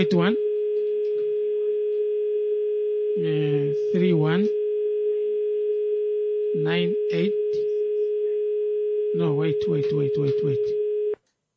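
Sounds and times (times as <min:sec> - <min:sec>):
speech: 0:00.0 - 0:00.4, 0:03.2 - 0:04.6, 0:06.6 - 0:07.7, 0:09.2 - 0:10.8
telephone dial tone while placing a live call: 0:00.4 - 0:03.2, 0:04.5 - 0:06.6, 0:07.5 - 0:09.2, 0:10.5 - 0:11.2.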